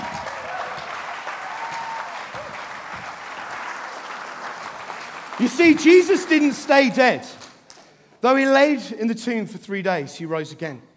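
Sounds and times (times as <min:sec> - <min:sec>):
faint cheer: 0:00.0 - 0:04.2
audience applause after a sawing trick: 0:00.0 - 0:07.8
speech: 0:05.4 - 0:07.4, 0:08.2 - 0:10.9.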